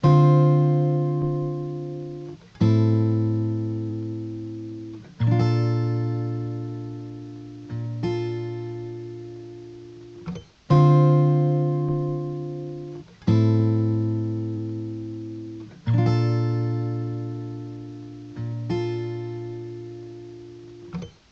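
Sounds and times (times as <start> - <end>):
dry acoustic guitar loop in D minor: 0.0 - 21.3.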